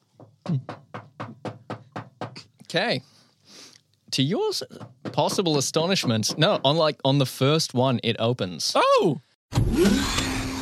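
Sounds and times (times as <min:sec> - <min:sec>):
speech: 0:00.2 - 0:00.8, 0:02.7 - 0:10.2
knocking on a door: 0:00.2 - 0:02.4, 0:04.7 - 0:06.9.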